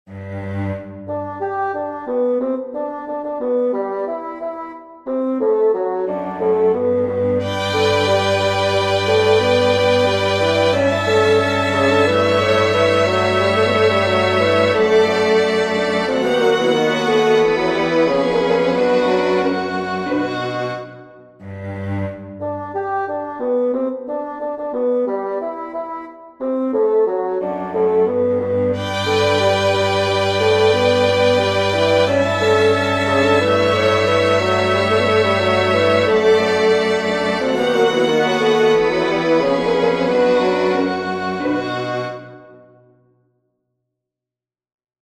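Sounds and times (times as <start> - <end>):
bassoon: 0.1 - 42.8
strings: 6.1 - 22.6, 27.4 - 42.5.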